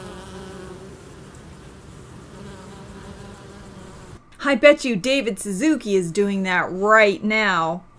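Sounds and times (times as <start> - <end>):
bees buzzing: 0.0 - 4.2
speech: 4.4 - 7.9.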